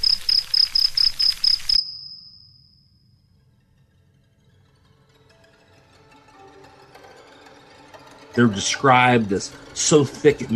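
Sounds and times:
crickets chirping: 0.0s - 3.2s
speech: 8.4s - 10.5s.

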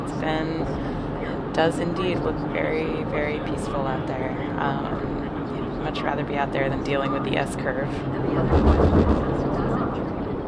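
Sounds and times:
large airplane taking off overhead: 0.0s - 10.4s
speech: 0.2s - 0.9s, 1.6s - 9.6s.

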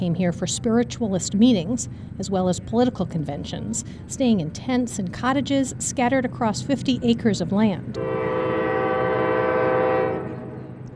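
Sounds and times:
speech: 0.0s - 8.4s
freight train horn blast: 8.0s - 10.9s.

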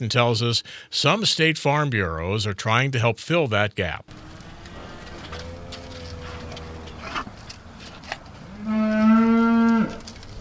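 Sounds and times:
speech: 0.0s - 4.3s
soft indistinct farmyard noises: 4.1s - 10.3s
single beef cow mooing on a family farm in northern Indiana: 4.2s - 7.3s, 8.4s - 10.1s.

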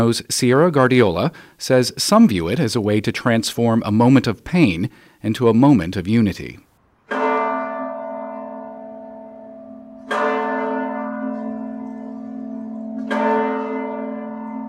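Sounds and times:
speech: 0.0s - 6.7s
large tower bell tolling: 7.1s - 14.6s.

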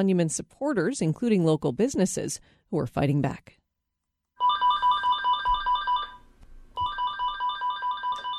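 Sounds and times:
speech: 0.0s - 3.6s
office telephone ringing at a real estate company office in Millinocket, Maine: 4.4s - 6.2s, 6.8s - 8.3s.

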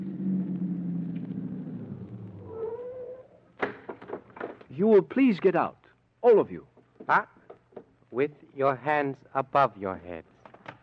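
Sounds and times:
vehicle engine winding down as it slows: 0.0s - 2.6s
speech: 4.8s - 7.4s, 8.1s - 10.3s.

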